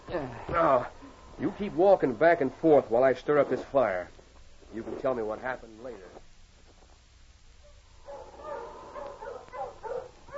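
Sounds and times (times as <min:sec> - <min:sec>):
speech: 0:00.2 - 0:06.2
several sled dogs yelping excitedly: 0:08.0 - 0:10.3.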